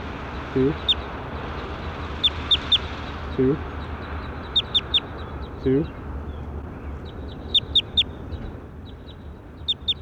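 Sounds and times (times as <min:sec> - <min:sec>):
speech: 0:00.5 - 0:01.0, 0:03.4 - 0:03.7, 0:05.6 - 0:06.0
bird calls as sharp high chirps: 0:02.2 - 0:09.9.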